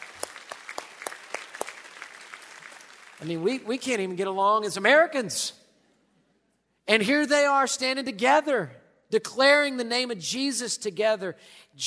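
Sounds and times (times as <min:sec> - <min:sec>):
crowd applauding: 0:00.0 - 0:04.2
speech: 0:03.2 - 0:05.6, 0:06.9 - 0:11.8.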